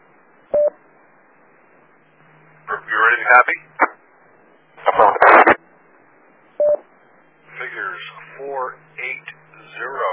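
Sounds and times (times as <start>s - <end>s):
band-limited radio static hiss: 2.1s - 6.0s, 7.0s - 10.1s
speech: 3.2s - 3.7s
DTMF touch-tone beep dialing an autopatch phone call over radio: 6.6s - 6.8s.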